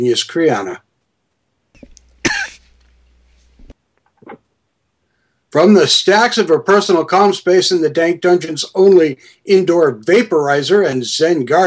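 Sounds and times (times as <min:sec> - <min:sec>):
speech: 0:00.0 - 0:00.8, 0:05.5 - 0:11.6
harsh raspy hacking cough: 0:01.8 - 0:02.7.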